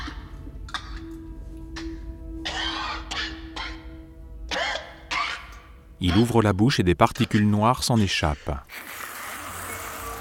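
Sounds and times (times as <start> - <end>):
man coughing: 1.8 - 3.9, 4.5 - 5.6
speech: 6.0 - 8.8.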